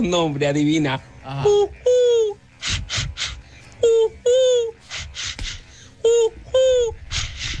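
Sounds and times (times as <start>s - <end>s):
speech: 0.0s - 1.8s
person's voice imitating dove coo-like calls: 1.3s - 5.4s, 6.0s - 7.5s.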